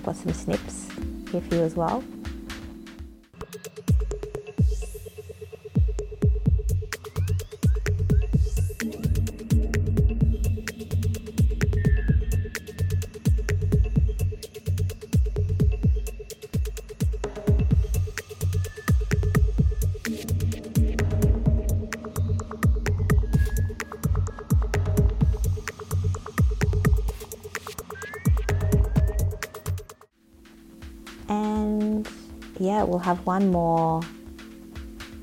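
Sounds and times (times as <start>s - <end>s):
rapid busy breakbeat drums in a drum and bass track: 0.0s - 35.2s
speech: 0.1s - 2.2s, 32.8s - 34.2s
deep throbbing drum and bass bassline: 6.2s - 16.0s, 17.3s - 27.2s.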